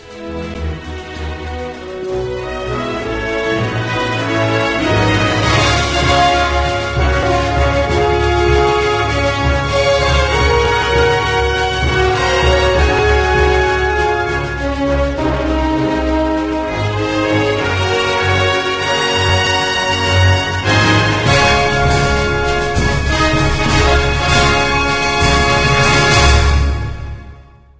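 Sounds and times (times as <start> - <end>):
end music: 0.0 - 27.6.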